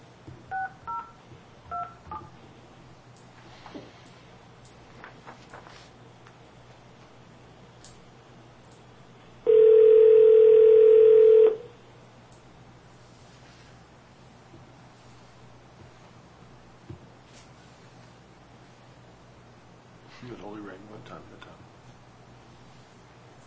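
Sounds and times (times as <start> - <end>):
telephone keypad tones entering an account code: 0.5 - 1.1, 9.5 - 11.6
long loud steady telephone tone: 9.5 - 11.7.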